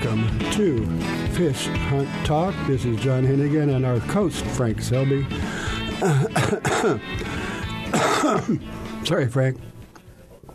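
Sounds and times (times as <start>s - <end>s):
speech: 0.1s - 9.7s
dry harsh throaty cough: 5.9s - 8.7s
throat clearing: 6.0s - 7.1s, 7.9s - 8.6s.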